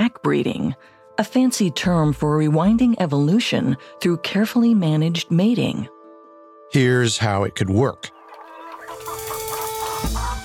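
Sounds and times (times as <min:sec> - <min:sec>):
speech: 0:00.2 - 0:06.0, 0:06.7 - 0:08.2
flock of chickens clucking: 0:08.1 - 0:10.4.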